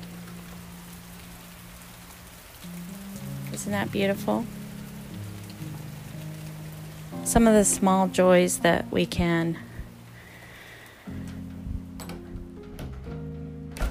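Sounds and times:
steady rain outside an open door: 0.0s - 13.8s
speech: 3.6s - 4.6s, 7.3s - 9.7s
door opening: 11.2s - 13.8s.

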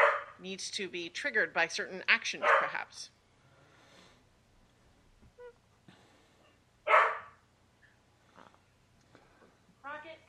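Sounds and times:
dog barking: 0.0s - 0.4s, 2.4s - 2.8s, 6.9s - 7.4s
speech: 0.4s - 3.2s.

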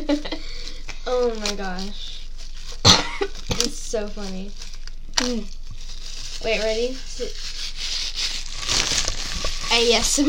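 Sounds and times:
speech: 0.1s - 0.4s, 1.1s - 2.1s, 3.2s - 4.6s, 5.2s - 5.6s, 6.4s - 7.6s, 9.7s - 10.2s
plastic wrapper being ripped apart: 1.1s - 10.2s.

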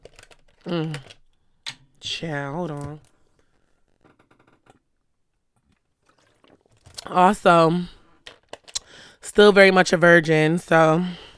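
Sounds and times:
speech: 0.6s - 1.2s, 2.0s - 3.1s, 7.1s - 8.0s, 9.3s - 11.2s
water being poured or sipped: 5.8s - 7.1s.

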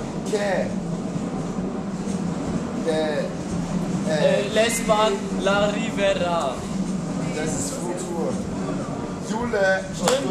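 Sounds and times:
S-Bahn commuter train rumbling past outside the window: 0.0s - 10.2s
speech: 0.3s - 0.9s, 2.9s - 6.7s, 7.4s - 8.5s, 9.3s - 10.2s.

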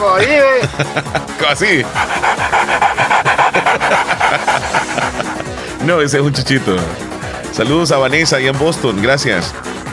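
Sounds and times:
speech: 0.0s - 3.9s, 5.8s - 9.7s
laughter: 0.6s - 1.4s, 2.5s - 5.7s
person imitating a pitbull dog panting: 1.7s - 5.8s.

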